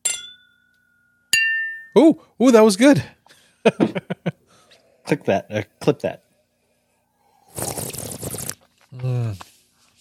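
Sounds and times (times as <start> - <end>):
glasses clinking in a toast: 0.0 - 2.0
speech: 2.0 - 4.1, 5.1 - 6.2, 9.0 - 9.5.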